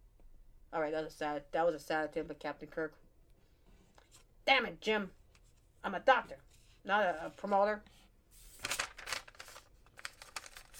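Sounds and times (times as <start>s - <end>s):
speech: 0.7s - 3.0s, 4.5s - 5.2s, 5.8s - 8.0s
notepad paper rustling and crinkling: 8.3s - 10.7s.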